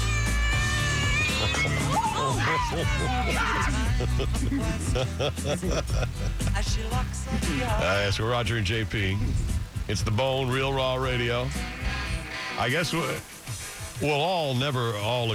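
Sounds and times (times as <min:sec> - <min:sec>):
several cats meowing and growling: 0:00.0 - 0:04.4
laughter: 0:00.0 - 0:08.2
steady low hum: 0:00.0 - 0:13.2
speech: 0:02.6 - 0:11.8, 0:12.6 - 0:13.4, 0:14.0 - 0:15.3.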